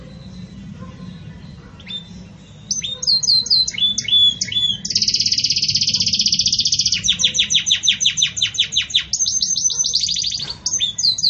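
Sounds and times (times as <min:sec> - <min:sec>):
Belgian canary singing campainha song style: 0:00.0 - 0:11.2.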